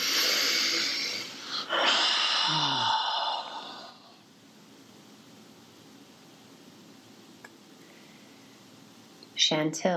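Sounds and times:
long deep breath: 0.0 - 4.2
speech: 9.5 - 9.9.

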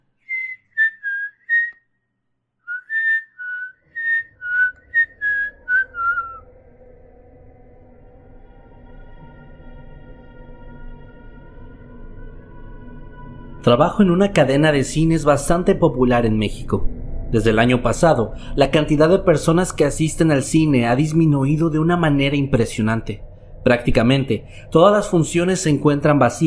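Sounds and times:
eerie wavering whistle: 0.2 - 1.8, 2.7 - 26.4
low dark drone: 4.6 - 26.4
speech: 13.7 - 26.4.

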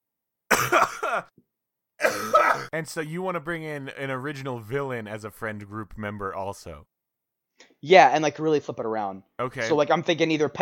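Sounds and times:
harsh coughing: 0.5 - 1.4, 2.0 - 2.9
speech: 0.6 - 6.9, 7.8 - 10.6
raspy throat clearing after laughing: 2.0 - 2.8.

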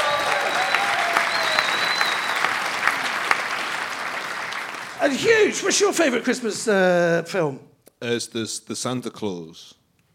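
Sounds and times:
crowd applauding: 0.0 - 5.8
faint whistles: 0.4 - 2.6
speech: 5.0 - 9.8.

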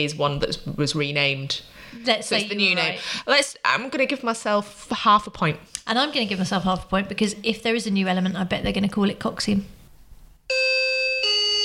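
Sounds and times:
speech: 0.0 - 9.8
electronic doorbell two-note ding-dong chime: 10.5 - 11.6.

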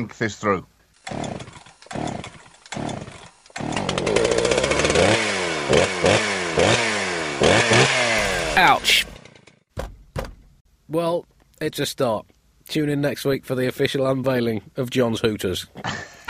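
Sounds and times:
speech: 0.0 - 1.4, 8.7 - 9.1, 11.6 - 16.0
small chainsaw sputtering and revving: 1.0 - 9.6.

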